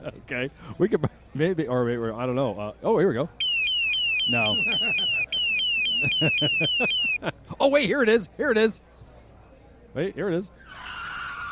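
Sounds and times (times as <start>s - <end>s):
speech: 0.0s - 3.4s, 4.2s - 5.4s, 6.0s - 8.9s, 10.0s - 11.0s
laughter: 4.3s - 5.3s, 5.9s - 7.6s
racing car skidding with tire screeches: 10.7s - 11.4s.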